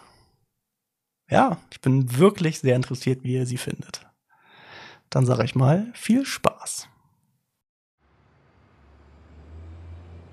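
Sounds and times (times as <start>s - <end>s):
speech: 1.3s - 4.1s, 5.1s - 6.9s
bus engine rumbling as it pulls away: 8.0s - 10.3s.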